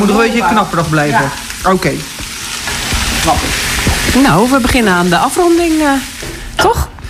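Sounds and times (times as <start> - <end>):
speech: 0.0 - 2.2, 3.2 - 6.9
cabbage stir-frying in a hot pan: 0.0 - 7.0
knocks and scrapes as cabbage is tossed in a pan: 2.2 - 4.8.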